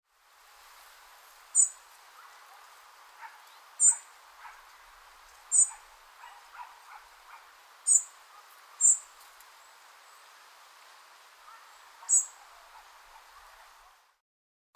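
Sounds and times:
soft background hiss: 0.1 - 14.2
European robin giving high thin call notes, Erithacus rubecula: 1.6 - 4.8, 5.5 - 10.3, 11.3 - 14.0.

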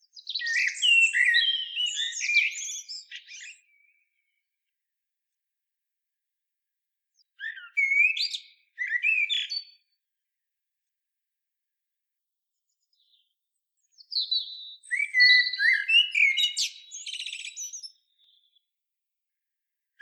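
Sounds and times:
common blackbird Turdus merula singing: 0.0 - 4.3, 7.2 - 9.8, 12.9 - 18.6.

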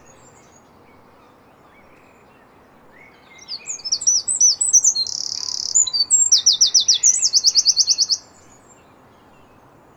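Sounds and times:
Eurasian wren Troglodytes troglodytes song: 3.0 - 8.9.

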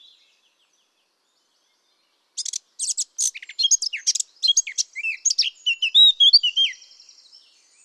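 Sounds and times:
Eurasian blackcap Sylvia atricapilla singing: 2.4 - 7.8.

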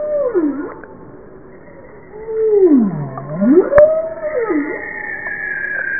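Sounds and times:
bowhead whale swooping U-shaped moans: 0.0 - 0.9, 2.1 - 5.9.

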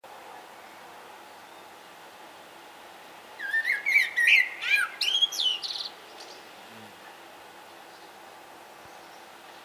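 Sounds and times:
common blackbird Turdus merula song: 0.6 - 1.9, 3.4 - 6.5, 7.7 - 9.6.

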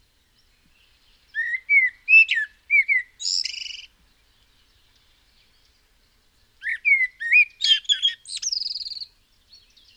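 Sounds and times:
Common blackbird Turdus merula singing: 1.2 - 3.9, 6.6 - 9.9.

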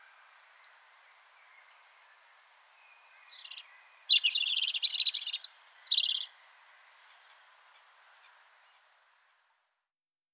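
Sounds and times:
European robin Erithacus rubecula singing: 0.0 - 7.5.

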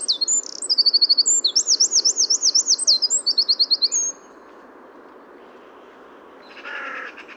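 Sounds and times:
Eurasian wren Troglodytes troglodytes singing high trills and chattering notes: 0.0 - 4.2.

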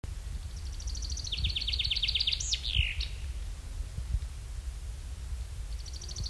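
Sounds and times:
steady low wind rumble: 0.1 - 6.2
common chaffinch Fringilla coelebs singing: 0.6 - 3.2, 5.7 - 6.2.

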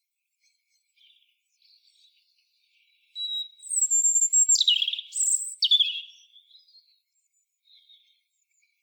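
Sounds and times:
European robin singing thin high whistled notes: 3.2 - 6.7.

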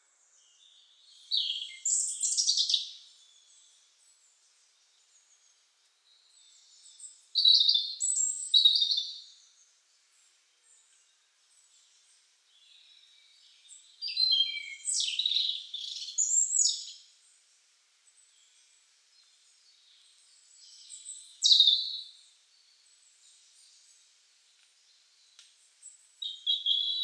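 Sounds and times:
European robin Erithacus rubecula singing: 1.3 - 2.9, 7.4 - 9.3, 13.7 - 17.0, 20.6 - 22.1, 26.2 - 27.0.

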